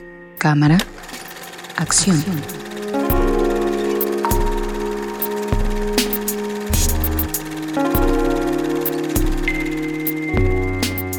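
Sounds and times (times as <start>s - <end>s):
speech: 0.0s - 0.9s, 1.8s - 2.6s
sustained synth chords in an upbeat radio jingle: 0.0s - 11.1s
thumping bass beat: 2.0s - 3.7s, 4.3s - 7.4s, 9.2s - 9.8s, 10.4s - 11.1s.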